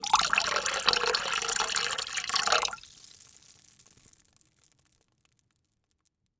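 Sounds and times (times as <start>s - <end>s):
water pouring into water in a plastic bucket: 0.0s - 3.2s.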